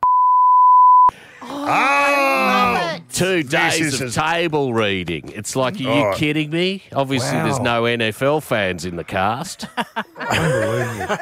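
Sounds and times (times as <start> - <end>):
censor bleep tone: 0.0 - 1.1
speech: 1.1 - 1.9, 3.2 - 11.2
drawn-out vocal groan: 1.4 - 3.0, 5.7 - 6.2, 7.2 - 7.8
laughter: 9.3 - 11.2.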